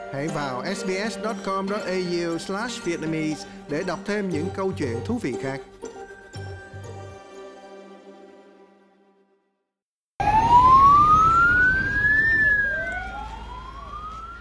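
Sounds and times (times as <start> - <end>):
soft chiming jingle: 0.0 - 8.6
speech: 0.1 - 5.8
alarm siren wailing: 10.2 - 14.3.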